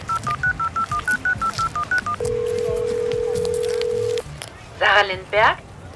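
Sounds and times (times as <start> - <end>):
short mobile phone dialing tones: 0.1 - 4.3
speech: 5.0 - 5.7.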